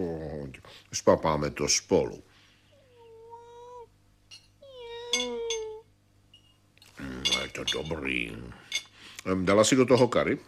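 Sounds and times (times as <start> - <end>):
speech: 0.7 - 2.3, 7.6 - 10.4
cat meowing: 4.6 - 5.8.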